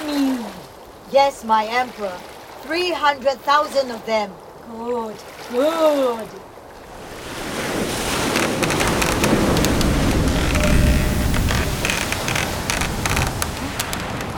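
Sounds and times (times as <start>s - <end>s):
speech: 1.1s - 6.4s
rough sea waves surging and crashing: 6.6s - 14.3s
strong gusty wind roaring over sea waves: 6.8s - 14.3s.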